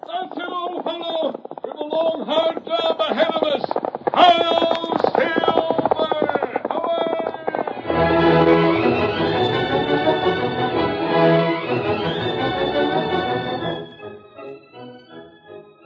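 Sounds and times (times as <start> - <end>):
galloping horse hoofbeats: 0.0 - 14.7
loud rousing orchestral music: 7.8 - 15.8.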